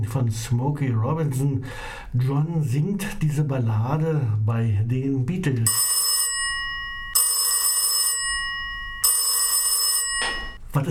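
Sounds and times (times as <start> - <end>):
speech: 0.0 - 5.9
telephone bell ringing with a metallic jangle: 5.7 - 10.6.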